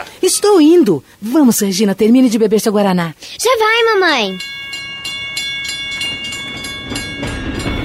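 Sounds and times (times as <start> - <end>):
speech: 0.2 - 4.6
train rumble: 4.4 - 7.8
train wheels clattering into a station: 4.8 - 7.8.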